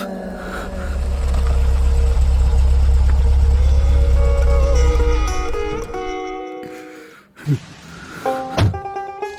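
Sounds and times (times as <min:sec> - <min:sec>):
new car engine idling: 0:00.1 - 0:06.1
thump: 0:08.5 - 0:08.9.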